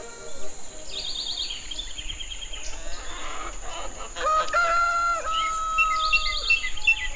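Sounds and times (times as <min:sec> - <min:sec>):
birds singing in a dawn chorus: 0:00.0 - 0:07.1
hens clucking: 0:02.8 - 0:04.8
rooster crowing: 0:04.1 - 0:07.1.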